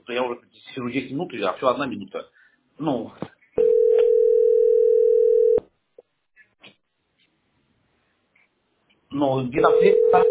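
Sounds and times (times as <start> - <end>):
speech: 0.1 - 3.2, 9.2 - 10.2
steady telephone line tone while calling an operator: 3.6 - 5.6, 9.6 - 10.2.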